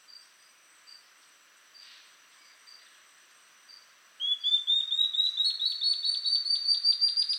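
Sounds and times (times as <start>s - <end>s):
Ocellated Antbird Phaenostictus mcleannani mcleannani song: 4.2s - 7.3s.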